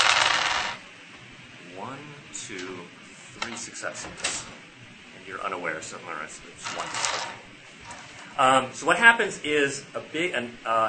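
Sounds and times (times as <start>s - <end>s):
seven dice rolled during a tabletop role-playing game: 0.0s - 0.8s
speech: 2.5s - 4.7s, 5.3s - 10.8s.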